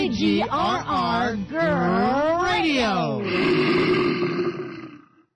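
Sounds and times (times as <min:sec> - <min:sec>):
speech: 0:00.2 - 0:04.7
animal roar in a radio station jingle: 0:03.3 - 0:05.2.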